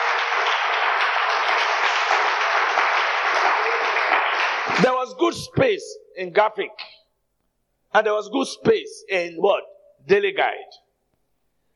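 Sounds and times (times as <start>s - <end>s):
crowd applauding: 0.0s - 5.4s
speech: 4.8s - 6.9s, 7.9s - 10.8s.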